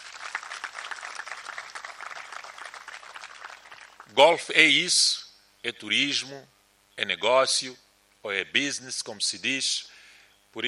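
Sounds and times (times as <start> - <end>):
audience applauding: 0.0 - 4.1
speech: 4.1 - 9.9.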